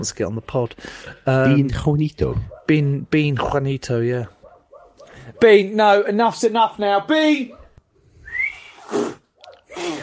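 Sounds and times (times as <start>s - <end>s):
speech: 0.0s - 4.4s, 5.3s - 7.6s
person whistling for a dog, thin rising whistle: 8.2s - 9.0s.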